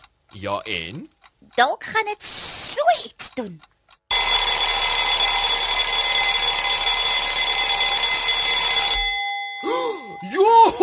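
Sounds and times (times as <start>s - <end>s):
speech: 0.4s - 3.7s, 10.2s - 10.8s
alarm clock ringing with a harsh metallic jangle: 4.1s - 10.8s.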